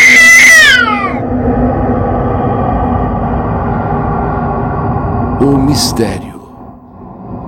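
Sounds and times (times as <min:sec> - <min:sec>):
cat meowing: 0:00.0 - 0:01.2
low steady rumble: 0:00.0 - 0:07.4
speech: 0:05.4 - 0:06.3.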